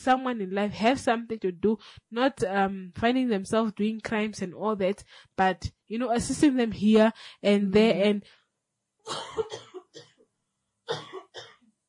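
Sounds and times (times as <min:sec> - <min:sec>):
speech: 0:00.0 - 0:08.4, 0:09.0 - 0:10.1
person coughing in short harsh bursts: 0:09.1 - 0:10.2, 0:10.9 - 0:11.6.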